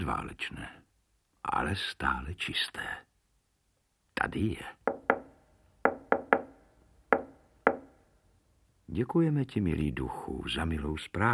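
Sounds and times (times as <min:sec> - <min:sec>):
speech: 0:00.0 - 0:00.8, 0:01.4 - 0:03.1, 0:04.2 - 0:05.0, 0:08.9 - 0:11.3
sharp knocks on a wooden surface: 0:04.9 - 0:08.0.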